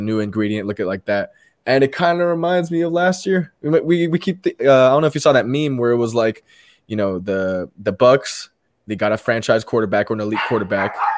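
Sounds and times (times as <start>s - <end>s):
speech: 0.0s - 11.1s
dog barking: 10.4s - 11.1s.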